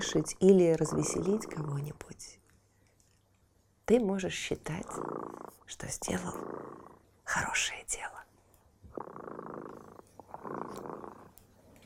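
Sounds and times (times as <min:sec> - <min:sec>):
cat purring: 0:00.0 - 0:02.4, 0:04.2 - 0:08.2, 0:08.8 - 0:11.8
speech: 0:00.0 - 0:02.4, 0:03.9 - 0:08.2, 0:09.0 - 0:11.2.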